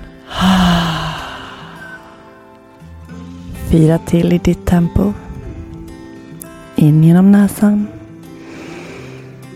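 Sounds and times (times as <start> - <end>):
deep breathy exhale through the mouth in a relaxation breathing exercise: 0.1 - 2.4, 8.4 - 9.5
speech: 3.7 - 5.2, 6.8 - 8.0.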